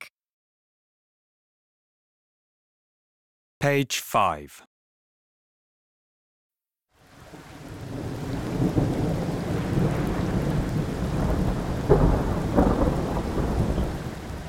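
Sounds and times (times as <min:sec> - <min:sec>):
speech: 0:03.6 - 0:04.7
steady rain during a storm: 0:06.9 - 0:14.4
low thunder rumbling: 0:07.3 - 0:14.4.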